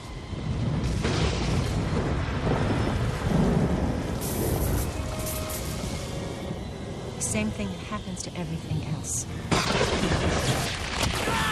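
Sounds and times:
heavy continuous thunder rumbling: 0.0 - 11.5
loud thunder crack from a lightning strike: 0.2 - 7.4, 9.5 - 11.5
speech: 7.3 - 11.5.

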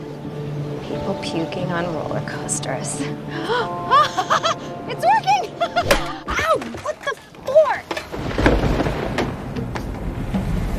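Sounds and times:
speech: 0.9 - 6.3
falling trash thuds and clatters: 5.9 - 10.1.

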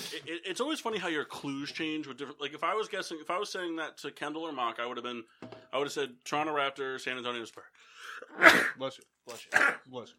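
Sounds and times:
speech: 0.2 - 10.1
sharp sneezes: 8.3 - 8.8, 9.4 - 9.9.

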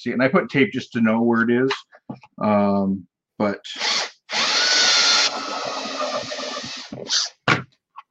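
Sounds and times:
speech: 0.0 - 4.4, 6.9 - 7.4
power drill with step drill bit enlarging a hole in plastic: 3.8 - 7.4.

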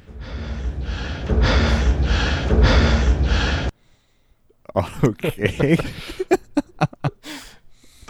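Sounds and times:
deep heavy breathing: 0.0 - 4.5, 7.2 - 8.0
laughter: 4.7 - 7.4
speech: 4.8 - 6.4.

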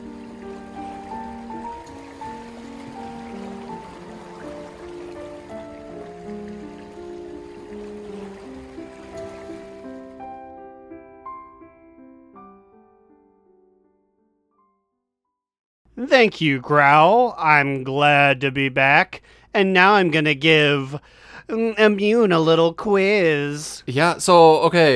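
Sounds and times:
waves gently lapping ashore: 0.0 - 10.2
calm melodic tune of sustained notes: 0.0 - 14.4
speech: 16.0 - 24.9.

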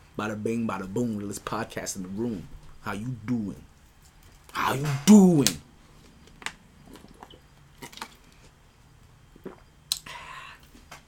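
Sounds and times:
speech: 0.2 - 3.7, 4.5 - 5.7
person drinking water with sips and swallows: 6.8 - 8.6, 9.3 - 10.8.

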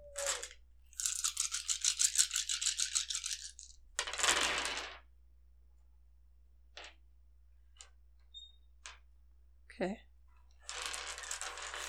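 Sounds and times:
handful of dice shaken and rolled: 0.1 - 5.0, 10.6 - 11.8
speech: 9.8 - 10.1.

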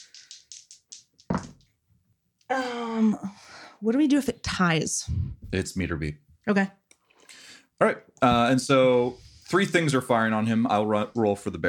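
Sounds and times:
twenty-sided die rattling across a table: 0.0 - 1.7
speech: 2.5 - 6.8, 7.8 - 11.6.

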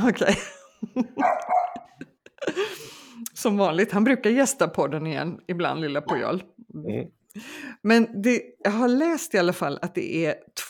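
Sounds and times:
speech: 0.0 - 1.6, 2.5 - 10.6
dog barking: 1.2 - 1.9.

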